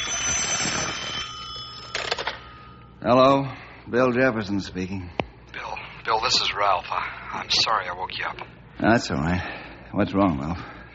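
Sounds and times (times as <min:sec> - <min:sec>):
telephone ringing: 0:00.0 - 0:03.0
speech: 0:03.0 - 0:05.2, 0:06.1 - 0:10.8.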